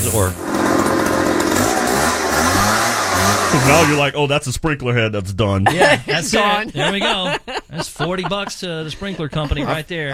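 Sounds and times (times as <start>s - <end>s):
weed whacker or leaf blower running outside: 0.0s - 4.0s
speech: 0.1s - 0.4s, 3.5s - 10.1s
laughter: 3.3s - 4.1s, 5.4s - 10.1s.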